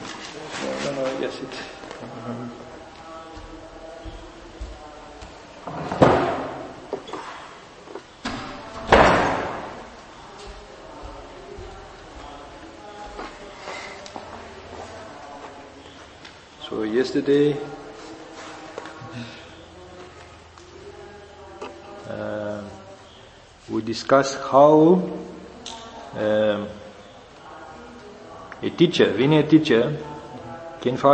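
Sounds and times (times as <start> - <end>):
faint voices murmuring in the room: 0.0 - 31.1
speech: 1.2 - 2.7, 17.1 - 17.7, 23.9 - 25.3, 26.2 - 26.8, 28.7 - 30.1, 30.8 - 31.1
door opening and slamming shut: 5.8 - 6.8, 8.2 - 9.8.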